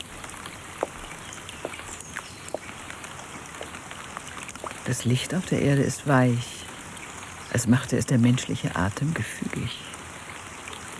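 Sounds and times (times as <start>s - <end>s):
warm early-spring rain falling: 0.0s - 10.9s
speech: 4.9s - 6.6s, 7.6s - 9.9s.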